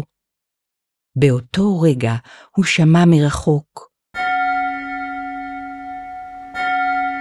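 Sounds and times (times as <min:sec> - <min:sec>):
speech: 0:01.2 - 0:03.9
distant bell tolling: 0:04.2 - 0:07.1.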